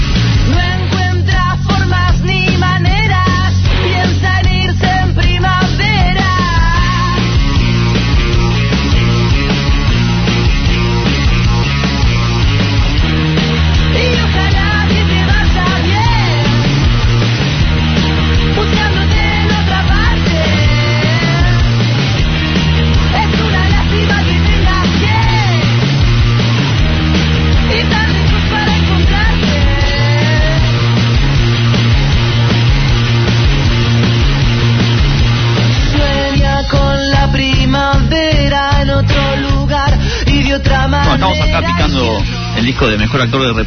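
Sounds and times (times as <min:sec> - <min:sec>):
loud dense rock track: 0:00.0 - 0:43.6
man's raw shouted vocals: 0:40.3 - 0:43.6
speech: 0:42.9 - 0:43.6.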